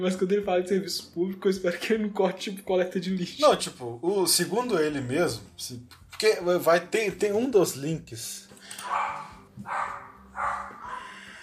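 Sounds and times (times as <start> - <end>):
speech: 0.0 - 10.0
dog barking: 8.8 - 11.3.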